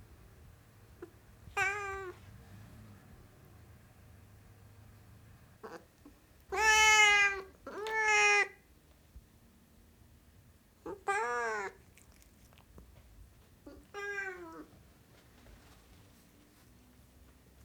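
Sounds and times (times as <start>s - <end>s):
Siamese cat giving harmonic meows: 1.0s - 2.2s, 6.5s - 8.6s, 10.9s - 12.0s, 13.6s - 14.7s.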